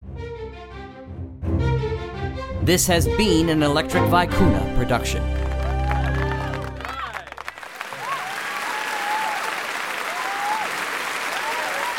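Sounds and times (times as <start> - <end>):
closing musical chord: 1.5 - 7.3
speech: 2.6 - 5.3
large audience applause: 5.2 - 11.9
audience whistles and cheers: 5.6 - 11.9.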